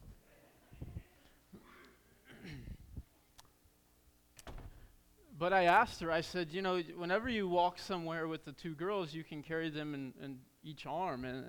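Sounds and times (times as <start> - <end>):
door latch catching with sharp clicks: 4.4 - 4.9
door being pushed shut with low thumps and rattles: 4.4 - 5.0
speech: 5.4 - 11.4.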